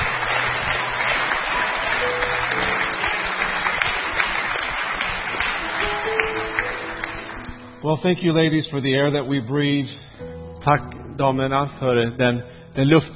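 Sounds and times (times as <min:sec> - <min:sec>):
crowd applauding meeting leaders: 0:00.0 - 0:07.8
speech: 0:07.9 - 0:13.1.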